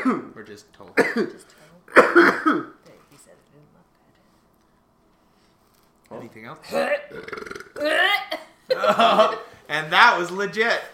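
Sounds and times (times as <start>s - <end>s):
speech: 0.0s - 2.7s, 6.1s - 10.9s
loud croaky burp: 6.7s - 8.3s.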